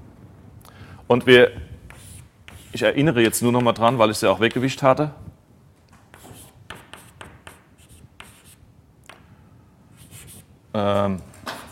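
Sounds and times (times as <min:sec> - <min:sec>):
speech: 0:01.1 - 0:01.6, 0:02.8 - 0:05.3, 0:10.8 - 0:11.3
writing on a board during a maths lecture: 0:01.8 - 0:04.8, 0:06.1 - 0:09.3, 0:10.0 - 0:10.5.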